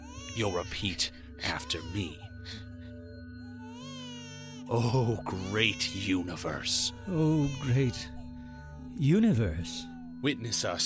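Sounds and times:
infant creature in a violet crystal wailing: 0.0 - 2.6, 3.6 - 10.2
speech: 0.4 - 2.6, 4.7 - 8.2, 9.0 - 10.8.

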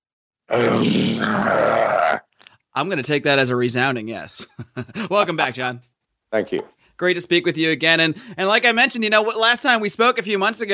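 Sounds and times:
speech: 0.5 - 2.2, 2.8 - 10.7
man roaring in reply: 0.5 - 2.3.

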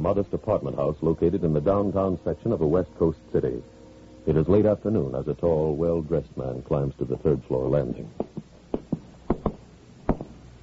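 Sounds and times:
speech: 0.0 - 8.4
man knocking on an apartment door: 8.2 - 10.3.

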